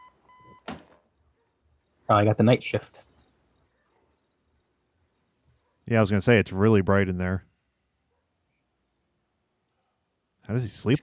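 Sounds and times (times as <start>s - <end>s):
soft electronic alarm clock tone: 0.0s - 0.6s
speech: 2.1s - 3.0s, 5.9s - 7.5s, 10.5s - 11.0s.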